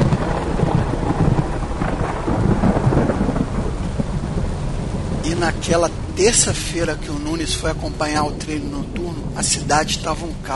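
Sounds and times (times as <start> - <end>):
heavy thunderstorm rain pouring: 0.0 - 10.5
low thunder rumbling: 0.0 - 10.5
speech: 5.4 - 10.5.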